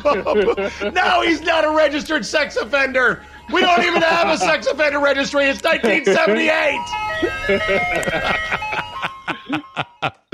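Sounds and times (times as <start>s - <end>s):
short choppy bursts of voice or laughter: 0.0s - 1.9s, 3.4s - 10.3s
speech: 0.0s - 8.6s, 9.8s - 10.3s
tinny ice cream truck jingle: 0.0s - 10.3s.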